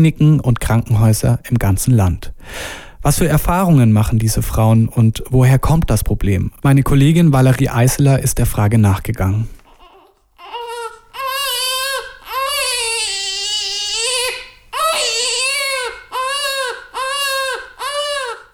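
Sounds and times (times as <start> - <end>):
speech: 0.0 - 9.6
newborn baby crying: 9.6 - 18.5.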